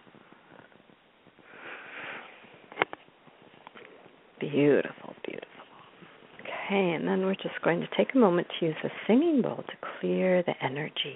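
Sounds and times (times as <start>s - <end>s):
deep inhaling of essential oil rubbed between the palms: 1.4s - 2.6s
speech: 4.4s - 5.1s, 6.7s - 11.1s.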